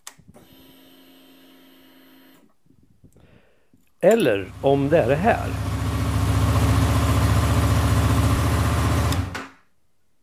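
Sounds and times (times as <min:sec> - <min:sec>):
speech: 0:04.0 - 0:05.7
motorcycle engine idling: 0:04.4 - 0:09.3.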